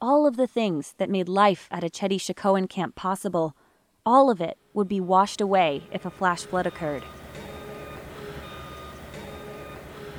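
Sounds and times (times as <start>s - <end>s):
speech: 0.3s - 7.2s
constant high mechanical whine: 5.8s - 10.1s
dump trucks and tractors plowing debris along muddy makeshift roads at a protest camp: 5.8s - 10.1s.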